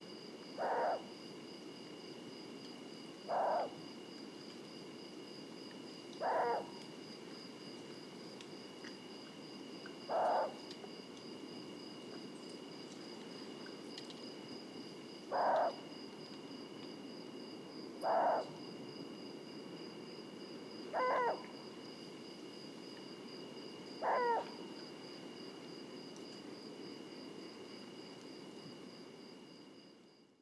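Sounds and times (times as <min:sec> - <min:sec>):
presumed female long-eared owl hoarse hooting: 0:00.6 - 0:01.1, 0:03.3 - 0:03.8, 0:06.2 - 0:06.7, 0:10.1 - 0:10.6, 0:15.3 - 0:15.8, 0:18.0 - 0:18.5, 0:20.9 - 0:21.5, 0:24.0 - 0:24.5.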